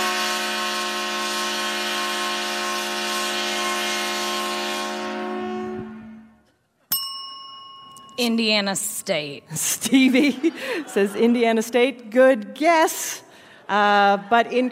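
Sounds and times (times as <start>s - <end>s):
loud 130-decibel train horn blast sounded for a football touchdown: 0.0s - 6.4s
short bright ding: 6.9s - 8.3s
speech: 8.2s - 14.7s
laughter: 9.5s - 11.9s, 13.6s - 14.7s.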